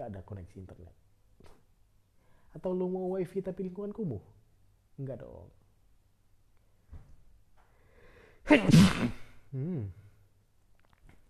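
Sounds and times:
speech: 0.1 - 1.0, 2.5 - 4.4, 5.0 - 5.6, 8.5 - 10.0
person sneezing: 8.4 - 10.0.

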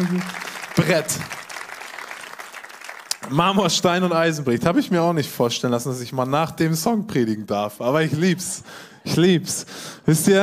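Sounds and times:
speech: 0.0 - 1.4, 3.3 - 10.4
audience applause: 0.0 - 4.2.

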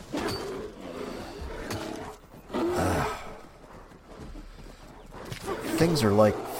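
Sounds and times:
bear roaring: 0.0 - 3.7, 5.2 - 6.5
speech: 5.8 - 6.5.

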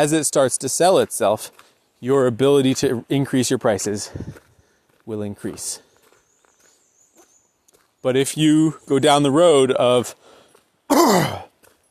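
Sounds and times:
speech: 0.0 - 5.9, 8.0 - 10.2, 10.9 - 11.5
person clearing throat after inhaling a bug: 10.9 - 11.5.

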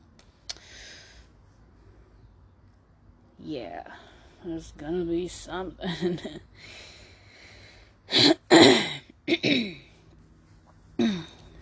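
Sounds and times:
speech: 3.5 - 6.9, 9.4 - 9.8
person with a dry throat clearing it: 8.1 - 9.8, 11.0 - 11.4.

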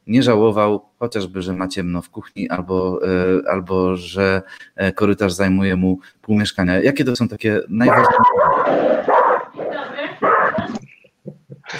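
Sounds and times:
speech: 0.1 - 9.1
dogs barking: 7.8 - 10.8.

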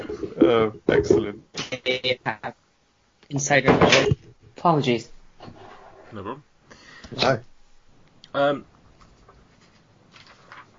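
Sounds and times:
speech: 0.5 - 2.6, 3.3 - 5.2, 6.1 - 6.5, 7.1 - 7.5, 8.4 - 8.7
paper rustling and crinkling: 9.0 - 10.7.

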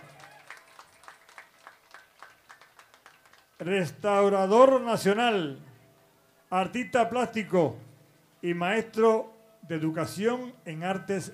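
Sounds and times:
audience applauding in a reverberant room: 0.0 - 3.6
speech: 3.6 - 5.7, 6.5 - 11.3.

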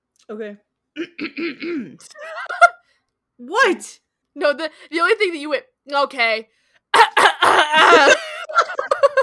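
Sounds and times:
speech: 0.3 - 2.2, 3.4 - 8.2
person coughing in short rough bursts: 1.0 - 2.6, 7.0 - 8.4.

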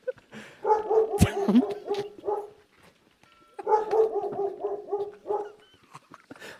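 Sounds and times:
dogs barking in yappy bursts: 0.6 - 2.6, 3.6 - 5.8.

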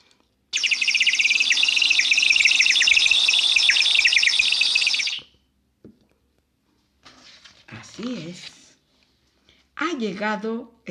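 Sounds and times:
high thin chirping birdsong: 0.6 - 5.3
speech: 10.0 - 10.8.

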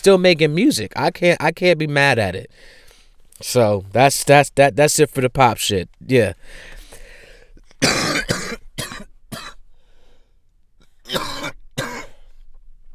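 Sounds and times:
speech: 0.0 - 2.8, 3.4 - 6.8
person clearing throat: 7.8 - 9.6, 11.1 - 12.3
person coughing with harsh hacking coughs: 7.8 - 9.6, 11.1 - 12.3.

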